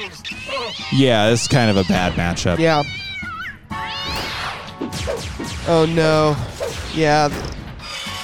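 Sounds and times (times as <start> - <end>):
cat yowling and snarling while attacking a metal robot: 0.0 - 1.0, 1.6 - 4.6
speech: 0.1 - 3.0, 5.1 - 7.5
sharp whacking impacts against a metal robot: 4.0 - 7.8.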